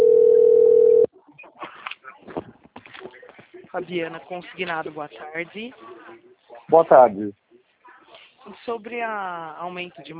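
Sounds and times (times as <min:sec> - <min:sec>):
telephone dial tone: 0:00.0 - 0:01.1
speech: 0:03.7 - 0:06.0, 0:06.7 - 0:07.4, 0:08.4 - 0:10.1.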